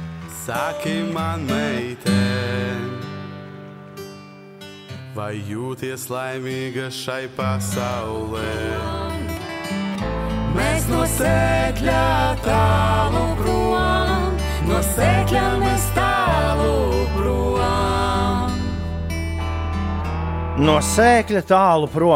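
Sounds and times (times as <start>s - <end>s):
speech: 0.5s - 2.9s, 5.2s - 9.1s, 10.5s - 17.8s, 20.6s - 22.1s
male-female duet sung in Latvian: 0.5s - 3.2s, 7.7s - 9.5s, 10.4s - 18.9s
sustained instrumental accompaniment: 9.4s - 21.6s.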